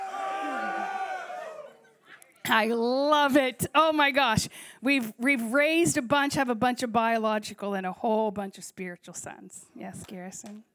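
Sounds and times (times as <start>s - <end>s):
audience of men roaring: 0.0s - 1.9s
speech: 2.5s - 10.7s.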